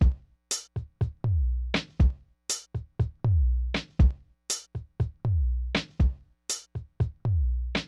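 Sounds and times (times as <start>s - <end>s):
beat at 120: 0.0s - 7.8s.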